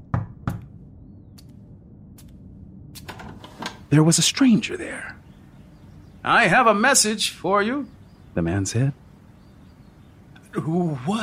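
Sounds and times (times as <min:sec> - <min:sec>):
solid knocks on a door: 0:00.1 - 0:00.7
speech: 0:03.9 - 0:05.2, 0:06.2 - 0:09.0, 0:10.6 - 0:11.2.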